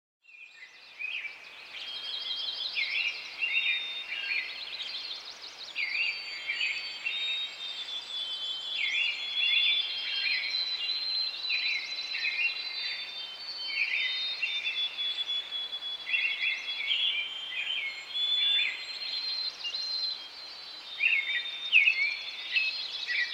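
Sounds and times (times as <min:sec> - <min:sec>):
forest ambience: 0:00.3 - 0:23.3.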